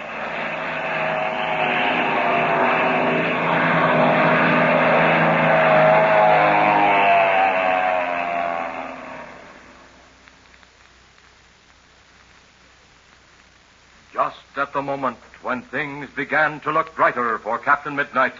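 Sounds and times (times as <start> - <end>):
black propeller plane engine droning while diving overhead: 0.0 - 10.1
speech: 14.9 - 18.3.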